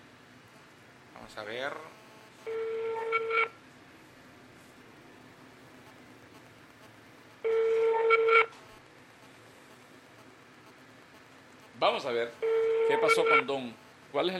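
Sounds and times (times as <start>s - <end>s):
faint hum: 0.0s - 14.3s
speech: 1.3s - 3.6s, 11.8s - 14.3s
outgoing phone call electronic ring tone: 2.4s - 3.6s, 7.4s - 8.6s, 12.4s - 13.5s.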